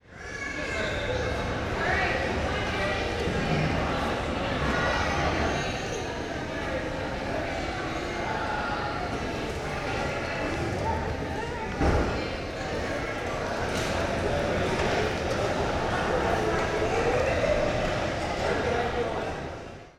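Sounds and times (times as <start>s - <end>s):
gymnasium interior ambience: 0.0s - 19.8s.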